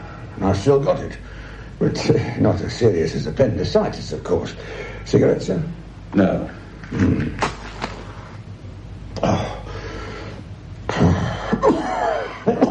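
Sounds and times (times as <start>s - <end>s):
speech: 0.4s - 7.6s
man with bronchitis coughing: 10.9s - 12.7s.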